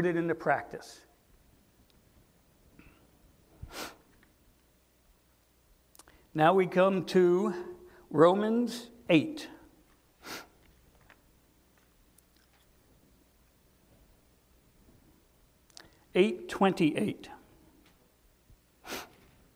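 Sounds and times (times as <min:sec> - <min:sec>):
speech: 0:00.0 - 0:01.1, 0:06.4 - 0:09.5, 0:16.2 - 0:17.4
person sniffling: 0:02.8 - 0:04.1, 0:10.2 - 0:10.6, 0:18.8 - 0:19.4.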